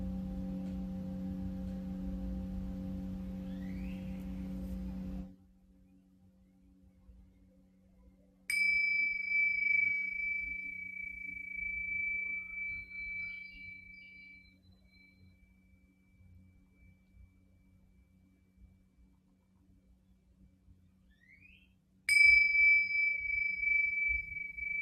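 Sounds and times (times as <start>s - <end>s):
bright singing bowl strikes: 0.0s - 5.3s, 8.5s - 14.4s, 22.1s - 24.7s
low droning singing bowl tone: 0.0s - 24.7s.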